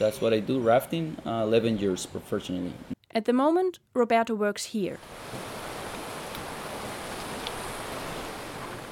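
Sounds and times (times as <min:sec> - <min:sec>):
speech: 0:00.0 - 0:05.5
rushing river water: 0:05.0 - 0:08.9.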